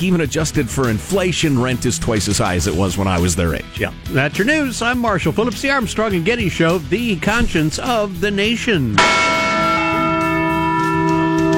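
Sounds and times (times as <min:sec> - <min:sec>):
speech: 0:00.0 - 0:09.4
large bell ringing: 0:08.9 - 0:11.5.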